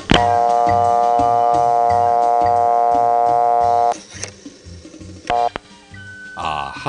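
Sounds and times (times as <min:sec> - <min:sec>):
quiet telephone line noise: 0:00.2 - 0:04.0, 0:05.3 - 0:05.6
old-fashioned telephone dial tone on a rural Pennsylvania phone line: 0:00.3 - 0:04.0, 0:05.3 - 0:05.6.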